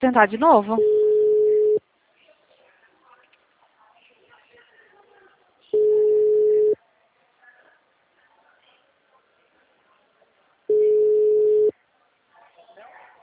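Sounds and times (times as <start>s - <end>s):
speech: 0.0s - 1.0s
faint noise: 0.0s - 13.2s
ringback tone of an outgoing telephone call: 0.8s - 1.8s, 5.8s - 6.8s, 10.7s - 11.7s.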